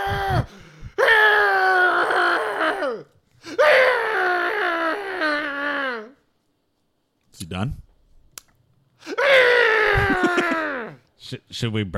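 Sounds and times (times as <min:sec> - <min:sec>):
acted anguished screaming and groaning of a man pierced by vines: 0:00.0 - 0:06.2, 0:09.1 - 0:11.0
speech: 0:00.3 - 0:00.7, 0:07.6 - 0:07.8, 0:11.5 - 0:11.9.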